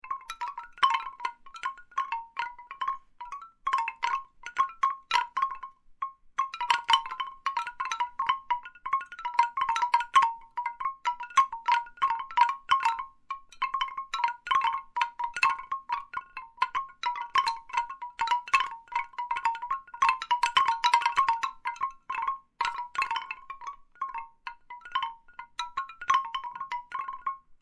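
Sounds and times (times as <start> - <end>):
bamboo wind chimes: 0.0 - 27.5.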